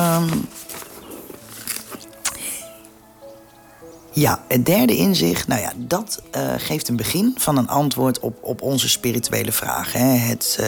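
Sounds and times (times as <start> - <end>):
paper crinkling while handling notes: 0.0 - 2.4
speech: 0.2 - 0.7, 4.2 - 10.6.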